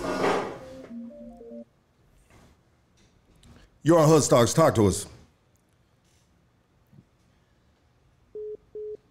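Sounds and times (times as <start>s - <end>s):
dead phone line beep tone on a call-in: 0.6s - 1.6s
speech: 3.8s - 5.1s.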